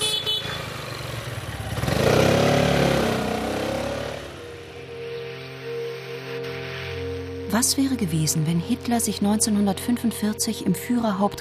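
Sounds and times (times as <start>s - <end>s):
Piaggio 400 three-wheeled vehicle driving off with revving engine: 0.1s - 6.0s
speech: 7.5s - 11.4s.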